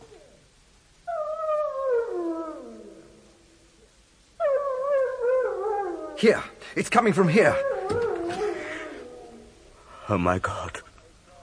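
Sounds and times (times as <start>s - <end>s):
dog howling: 1.1s - 3.1s, 4.4s - 6.5s, 7.3s - 9.6s
speech: 6.2s - 8.1s, 10.1s - 10.9s.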